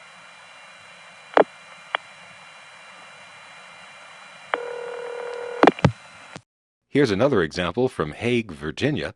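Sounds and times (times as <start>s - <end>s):
long distance telephone line hiss: 0.0s - 6.4s
buzzy multi-tone long distance telephone switching signal: 4.5s - 5.9s
long distance telephone call switching clicks: 4.6s - 5.9s
speech: 6.9s - 9.1s.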